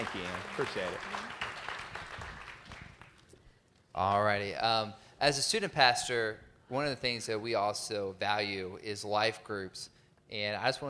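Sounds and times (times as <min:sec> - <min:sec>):
speech: 0:00.0 - 0:01.4, 0:04.0 - 0:10.8
crowd clapping: 0:00.0 - 0:03.4.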